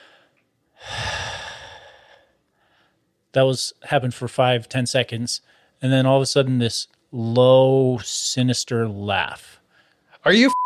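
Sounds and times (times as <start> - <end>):
long breathy exhale imitating heavy breathing: 0.0 - 3.0
speech: 3.3 - 9.6, 10.2 - 10.6.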